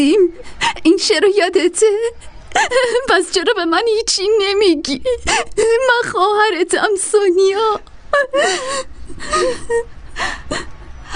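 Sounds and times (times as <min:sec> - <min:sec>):
speech: 0:00.0 - 0:11.1
person sobbing in broken gasping bursts: 0:01.9 - 0:03.1, 0:04.9 - 0:05.9, 0:08.1 - 0:11.1.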